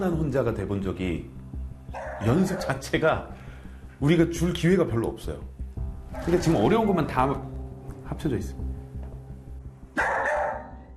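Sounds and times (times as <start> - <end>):
speech: 0.0 - 3.4, 4.0 - 5.5, 6.1 - 7.5, 8.1 - 8.7
dog left alone at home barking excitedly: 1.9 - 2.7, 10.0 - 10.8.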